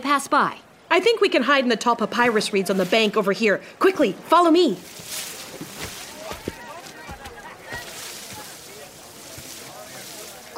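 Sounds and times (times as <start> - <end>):
speech: 0.1 - 5.3
water sloshing and splashing from boats being poled: 4.6 - 10.5.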